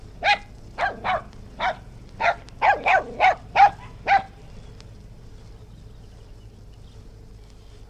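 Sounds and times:
West Highland white terrier yapping outdoors: 0.2s - 4.4s.

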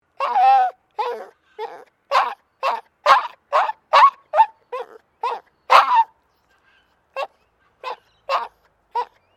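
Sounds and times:
distressed Maltese dog giving yelping whimpers: 0.2s - 6.1s, 7.2s - 9.3s.

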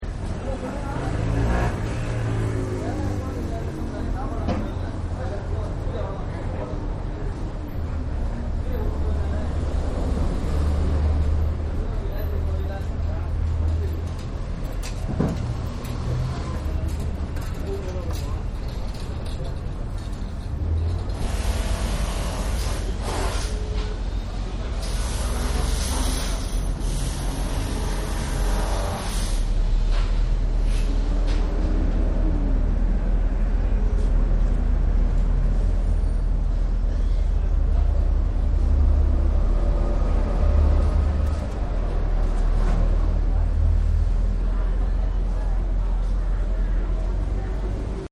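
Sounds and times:
busy city street ambience in India: 0.0s - 48.0s.

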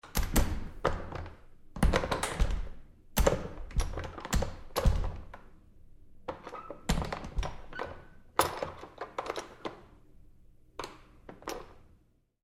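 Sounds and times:
bathroom stall door handling: 0.0s - 5.5s, 6.3s - 9.6s.

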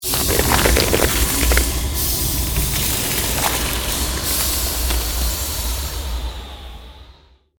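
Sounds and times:
created fantasy ice magic spell blizzard shards: 0.0s - 5.3s.

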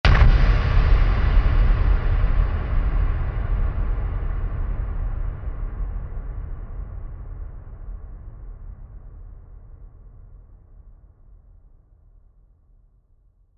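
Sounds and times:
impact hit with heavy reverb: 0.1s - 7.6s.

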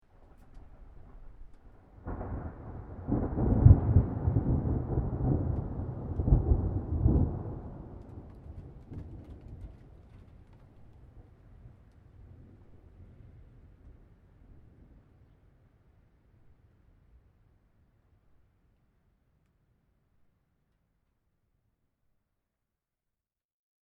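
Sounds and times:
thunder roll of a thunderstorm at medium distance: 0.2s - 10.8s.

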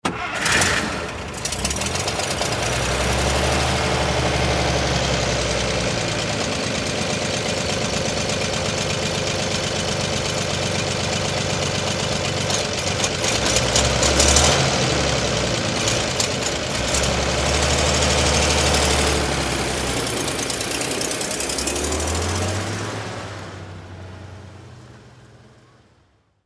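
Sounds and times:
World War II military truck engine starting: 0.0s - 25.6s.

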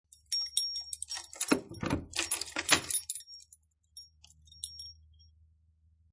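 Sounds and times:
keys rattling: 0.0s - 5.2s
door locking: 1.1s - 3.2s.

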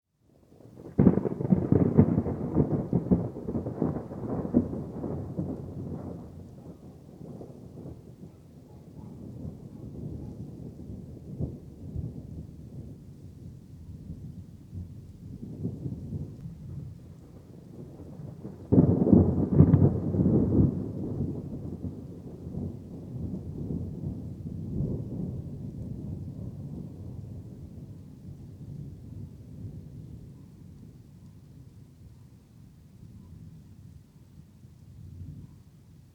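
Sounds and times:
thunder claps and rolls in an electric storm: 0.8s - 31.1s
distant dog barks: 6.5s - 7.1s, 8.2s - 10.6s, 30.3s - 30.6s, 35.4s - 35.7s.

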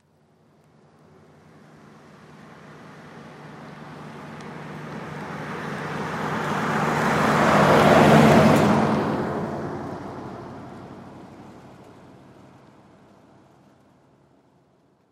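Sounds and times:
car driving by on a country road: 0.8s - 12.2s.

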